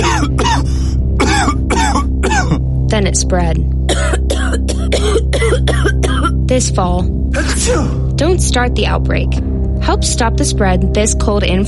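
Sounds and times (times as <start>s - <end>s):
person coughing harshly: 0.0s - 2.7s, 3.9s - 6.4s, 7.4s - 8.0s
speech: 3.0s - 3.8s, 6.6s - 11.6s.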